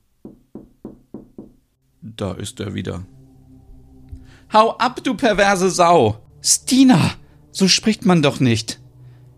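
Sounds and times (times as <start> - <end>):
knocking on a window pane: 0.2 - 1.6
speech: 2.2 - 3.2, 4.5 - 8.8.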